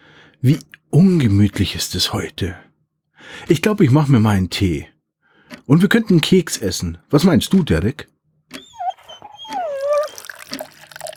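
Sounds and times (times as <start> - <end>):
speech: 0.4 - 2.7, 3.3 - 4.9, 5.7 - 8.1
dog whimpering: 8.6 - 11.1.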